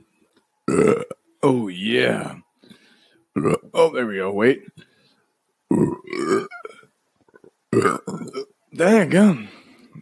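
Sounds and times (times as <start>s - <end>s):
loud drawn-out burp: 0.7s - 1.2s, 3.4s - 3.8s, 5.7s - 6.9s, 7.7s - 8.5s
speech: 0.7s - 2.4s, 3.4s - 4.9s, 5.7s - 6.5s, 7.7s - 9.6s.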